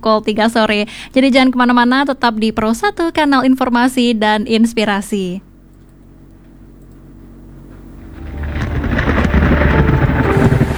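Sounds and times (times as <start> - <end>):
speech: 0.0 - 5.5
rain hissing during a storm: 6.0 - 10.7
thunder rumbling during a storm: 7.4 - 10.7
storm wind: 8.0 - 10.7.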